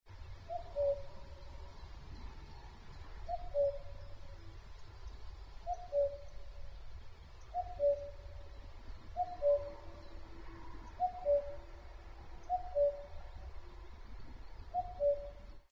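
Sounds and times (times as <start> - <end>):
cuckoo calling: 0.5 - 1.1, 3.3 - 3.9, 5.7 - 6.3, 7.5 - 8.2, 9.2 - 9.8, 11.0 - 11.6, 12.5 - 13.1, 14.7 - 15.4.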